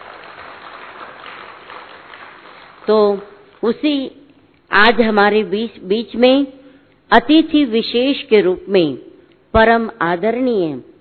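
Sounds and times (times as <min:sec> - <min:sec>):
audience applause: 0:00.0 - 0:02.9
speech: 0:02.9 - 0:10.9.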